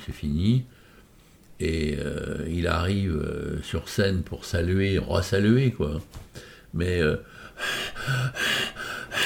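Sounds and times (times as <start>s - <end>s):
speech: 0.0s - 0.8s, 1.6s - 8.4s
person imitating heavy panting: 7.6s - 9.2s.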